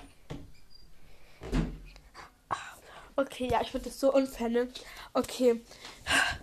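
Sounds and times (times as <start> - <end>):
wooden door thump: 1.4 - 1.8
speech: 3.2 - 6.3.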